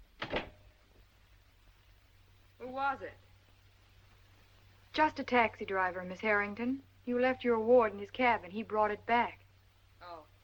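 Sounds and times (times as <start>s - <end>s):
door shutting with latch knock and thud: 0.2s - 0.6s
speech: 2.7s - 3.3s, 5.0s - 9.4s.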